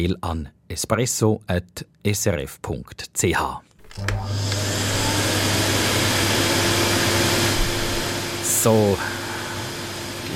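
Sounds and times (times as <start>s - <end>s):
speech: 0.0s - 4.9s, 8.6s - 9.2s
vacuum cleaner running: 3.8s - 10.3s.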